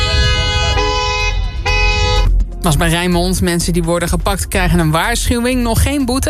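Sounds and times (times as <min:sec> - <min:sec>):
car horns honking: 0:00.0 - 0:02.4
steady low rumble of traffic: 0:00.0 - 0:05.1
speech: 0:02.6 - 0:06.2.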